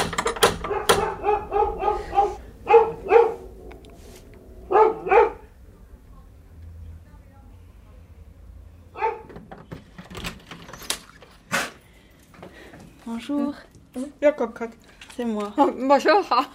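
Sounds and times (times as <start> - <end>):
female dog barking in sharp yaps: 0.6 - 3.7, 4.6 - 5.6, 9.0 - 9.4
speech: 13.2 - 16.5.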